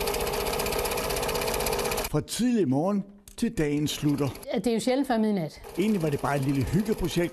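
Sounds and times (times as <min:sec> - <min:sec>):
sewing machine running while sewing cloth into face masks: 0:00.0 - 0:02.1, 0:03.7 - 0:04.5, 0:05.6 - 0:07.3
speech: 0:02.1 - 0:07.3.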